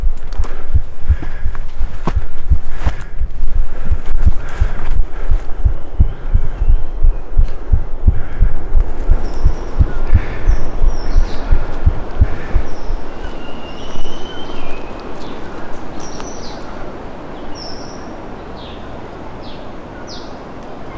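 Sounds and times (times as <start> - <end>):
human heartbeat recorded by the person themself: 0.0 - 13.1.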